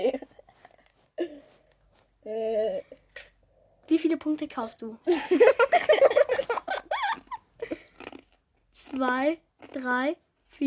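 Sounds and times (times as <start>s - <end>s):
speech: 4.1s - 6.4s, 9.0s - 10.6s
laughter: 5.1s - 7.8s
chewing with soft wet mouth sounds: 7.7s - 10.6s.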